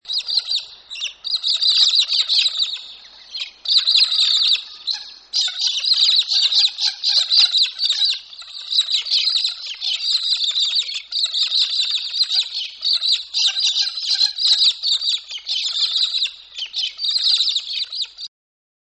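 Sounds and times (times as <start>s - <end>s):
galah calling: 0.0s - 18.3s.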